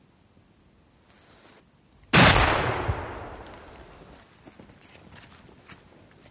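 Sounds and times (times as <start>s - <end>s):
hunting rifle shot echoing through a forest at night: 2.1s - 4.2s.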